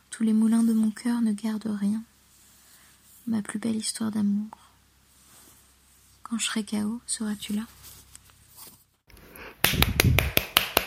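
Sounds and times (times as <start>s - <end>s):
speech: 0.2s - 2.1s, 3.3s - 4.6s, 6.3s - 7.8s
hand clapping: 9.6s - 10.8s.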